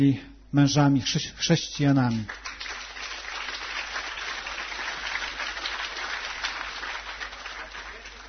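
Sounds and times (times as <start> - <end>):
speech: 0.0 - 2.5
crowd clapping: 2.0 - 8.2.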